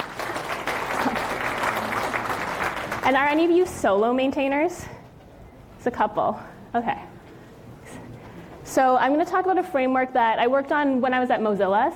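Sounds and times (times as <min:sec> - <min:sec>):
audience applause for open-source maintainers at a tech conference talk: 0:00.0 - 0:03.2
speech: 0:03.1 - 0:05.0, 0:05.8 - 0:07.1, 0:08.8 - 0:11.9.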